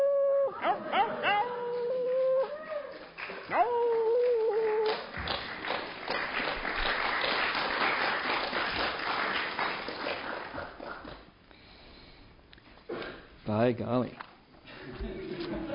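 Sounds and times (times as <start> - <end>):
person letting out coyote-like howls: 0.0 - 5.0
laughter: 0.5 - 1.6, 14.7 - 15.7
crowd applause: 2.7 - 11.2
speech: 13.7 - 14.2.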